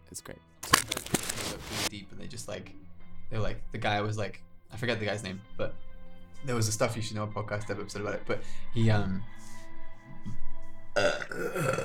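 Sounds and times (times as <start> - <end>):
speech: 0.1 - 9.6, 11.0 - 11.8
long loud low throaty burp: 11.0 - 11.8.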